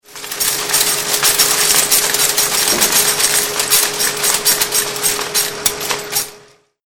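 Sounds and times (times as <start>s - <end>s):
Linotype line-casting machine in a print shop: 0.0s - 6.6s.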